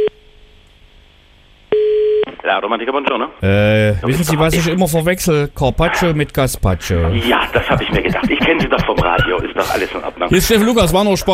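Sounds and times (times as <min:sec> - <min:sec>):
steady telephone tone when dialing a number again: 0:00.0 - 0:00.3, 0:01.7 - 0:02.3
speech: 0:02.5 - 0:11.3
laughter: 0:06.8 - 0:11.1.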